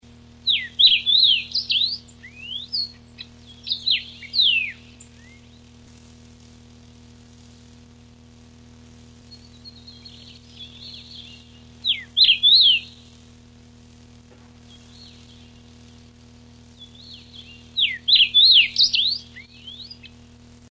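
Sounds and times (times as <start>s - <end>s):
Carpodacus erythrinus: 0.4s - 5.6s, 9.3s - 13.0s, 14.6s - 15.8s, 16.8s - 20.2s.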